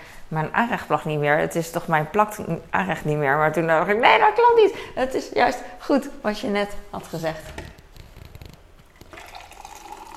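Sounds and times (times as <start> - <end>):
speech: 0.3 - 7.7
coffee pouring into a cup: 8.9 - 10.1.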